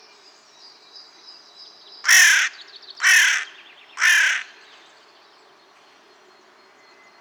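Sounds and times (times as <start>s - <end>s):
Carrion crow giving harsh hoarse caws: 2.0s - 4.7s.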